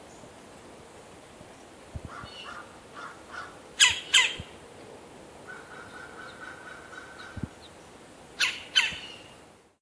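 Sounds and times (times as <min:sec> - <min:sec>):
Red-bellied woodpecker squawk calls, Melanerpes carolinus: 0:02.1 - 0:04.5, 0:05.5 - 0:07.7, 0:08.4 - 0:09.4.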